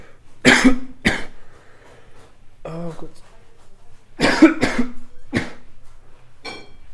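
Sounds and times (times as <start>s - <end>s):
person coughing harshly: 0.4s - 1.4s, 4.2s - 5.7s
speech: 0.6s - 0.9s.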